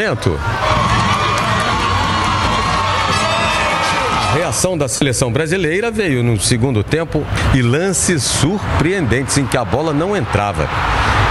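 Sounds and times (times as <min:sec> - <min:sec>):
speech: 0:00.0 - 0:01.0, 0:04.3 - 0:11.2
huge stadium crowd roaring, cheering, shouting and whooping: 0:00.0 - 0:05.0, 0:07.6 - 0:11.2.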